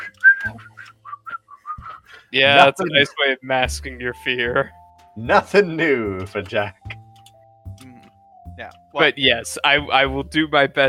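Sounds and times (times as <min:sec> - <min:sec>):
person whistling a short nervous tune: 0:00.0 - 0:02.1
speech: 0:00.4 - 0:00.7, 0:02.3 - 0:06.8, 0:08.6 - 0:10.8.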